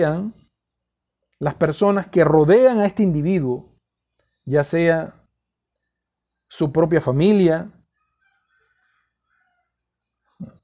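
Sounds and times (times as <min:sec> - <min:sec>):
speech: 0:00.0 - 0:00.4, 0:01.4 - 0:03.7, 0:04.5 - 0:05.2, 0:06.5 - 0:07.8
rooster crowing: 0:07.9 - 0:10.5.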